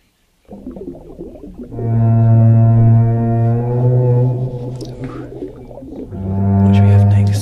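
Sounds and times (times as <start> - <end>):
low watery rumble: 0.0 - 7.4
whale call: 0.5 - 7.4.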